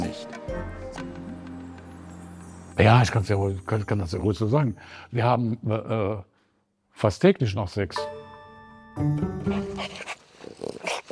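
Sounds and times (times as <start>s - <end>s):
speech: 0.5s - 1.3s, 2.8s - 6.3s, 7.0s - 8.2s, 9.0s - 11.0s
dogs of all ages and sizes growling and snarling: 9.4s - 11.1s.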